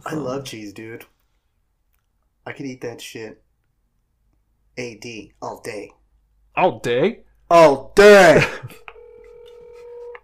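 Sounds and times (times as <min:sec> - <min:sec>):
speech: 0:00.1 - 0:01.2, 0:02.4 - 0:03.4, 0:04.8 - 0:06.0, 0:06.6 - 0:08.9
steady electronic telephone tone: 0:08.9 - 0:10.2.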